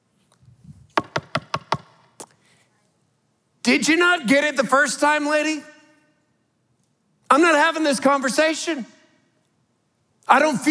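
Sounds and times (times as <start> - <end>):
knocks on a door: 1.0 - 1.9
speech: 3.7 - 5.7, 7.4 - 9.0, 10.3 - 10.6.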